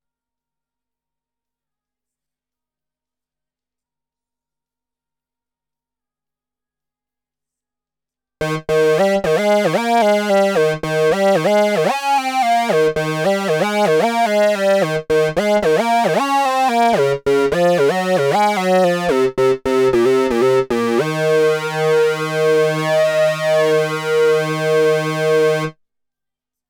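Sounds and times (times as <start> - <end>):
Moog synthesizer: 8.4 - 25.8.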